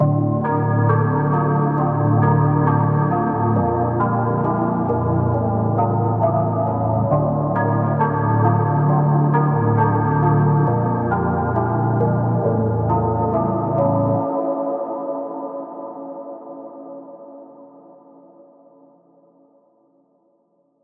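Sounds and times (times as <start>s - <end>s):
melody in D minor at 135 BPM: 0.0s - 16.3s.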